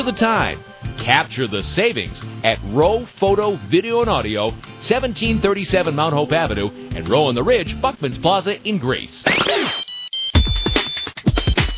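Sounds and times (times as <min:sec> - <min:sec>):
speech: 0:00.0 - 0:09.8
phone ringtone playing a song, bright busy electronic melody: 0:09.4 - 0:11.7.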